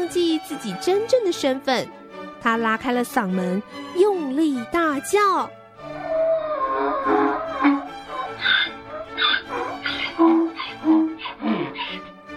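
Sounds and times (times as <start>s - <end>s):
speech: 0.1s - 5.6s
donkey braying loudly: 5.8s - 12.1s.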